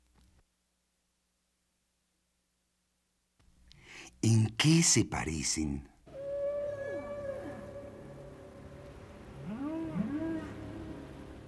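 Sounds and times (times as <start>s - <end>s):
speech: 4.2s - 5.9s
whale calls underwater: 6.1s - 11.4s.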